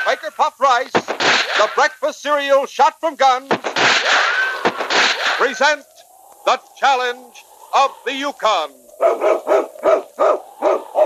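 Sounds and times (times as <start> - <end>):
speech: 0.1 - 4.3, 5.4 - 11.0
husky lead dog barking: 9.0 - 11.0.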